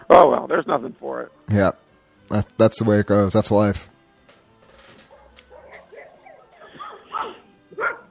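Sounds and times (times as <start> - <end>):
speech: 0.1 - 3.9
dog barking: 5.0 - 8.1.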